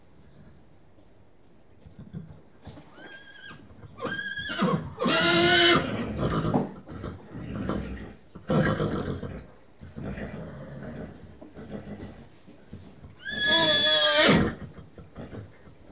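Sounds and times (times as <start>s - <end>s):
horse whinnying in stables: 2.9s - 6.7s, 13.2s - 14.7s.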